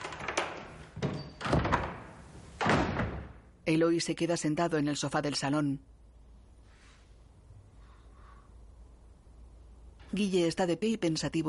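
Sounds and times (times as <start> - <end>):
room doors shutting indoors: 0.0 - 3.4
speech: 3.7 - 6.0, 10.1 - 11.4.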